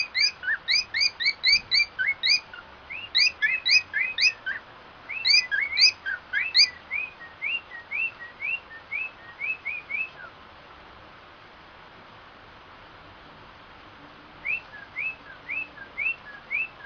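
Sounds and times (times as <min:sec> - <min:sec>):
white-faced cockatiel whistling song: 0:00.0 - 0:10.3, 0:14.4 - 0:16.8.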